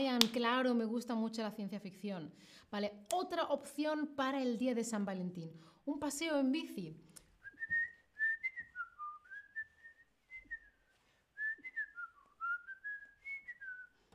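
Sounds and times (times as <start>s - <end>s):
speech: 0.0s - 7.2s
whistled melody from a Spanish TV series: 7.4s - 14.0s.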